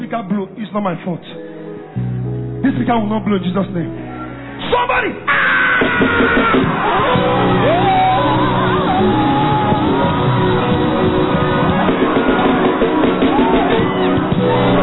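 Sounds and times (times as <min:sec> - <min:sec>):
speech: 0:00.1 - 0:01.4, 0:02.7 - 0:04.0, 0:04.7 - 0:09.3
crowd of many voices shouting and yelling: 0:05.3 - 0:14.8.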